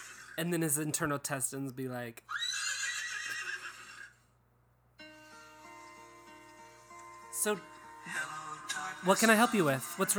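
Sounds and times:
speech: 0:00.4 - 0:02.5, 0:07.4 - 0:08.3, 0:09.0 - 0:10.1
voice imitating a horse whinnying: 0:02.3 - 0:04.2.

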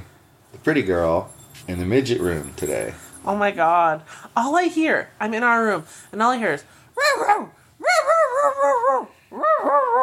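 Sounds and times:
speech: 0:00.6 - 0:07.6
dog giving high-pitched wolf-like yowling barks: 0:07.0 - 0:10.0.

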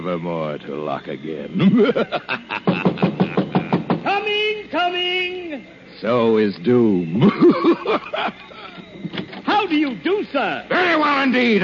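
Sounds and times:
speech: 0:00.0 - 0:03.3, 0:04.2 - 0:08.8, 0:09.5 - 0:11.6
laughter: 0:01.6 - 0:04.0, 0:07.2 - 0:09.1
knocking on a wooden door: 0:02.7 - 0:04.1.

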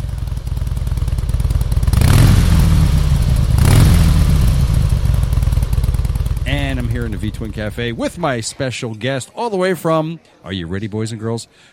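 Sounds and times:
Ural motorcycle engine idling and revving: 0:00.0 - 0:08.2
speech: 0:07.1 - 0:11.7.

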